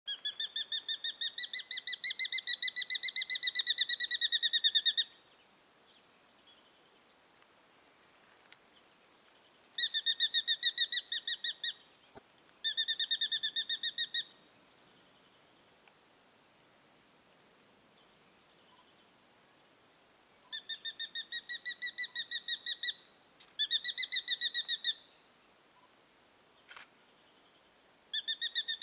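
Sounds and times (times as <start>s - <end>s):
Tachyspiza fasciata brown goshawk calling: 0.1s - 5.2s, 9.8s - 11.9s, 12.6s - 14.4s, 20.5s - 25.1s, 28.1s - 28.8s.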